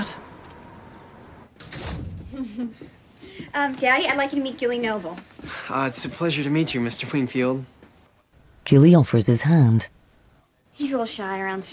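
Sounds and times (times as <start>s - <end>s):
door pushed shut with a thud and sliding rumble: 1.5s - 2.4s
speech: 2.4s - 7.8s, 8.7s - 9.9s, 10.8s - 11.7s.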